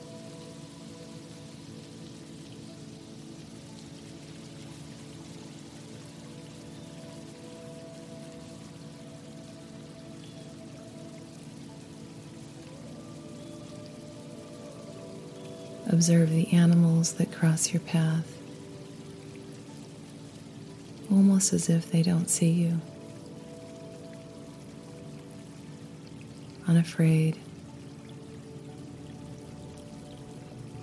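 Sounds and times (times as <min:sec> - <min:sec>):
low sustained tones: 0:00.0 - 0:30.8
water trickling: 0:00.0 - 0:30.8
speech: 0:15.9 - 0:18.4, 0:21.2 - 0:22.9, 0:26.7 - 0:27.5.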